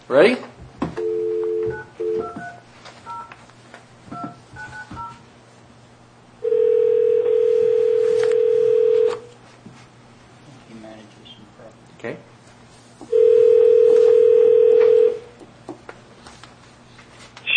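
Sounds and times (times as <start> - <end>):
speech: 0.1 - 0.6
telephone dial tone: 1.0 - 3.2, 6.4 - 9.3, 13.1 - 15.2.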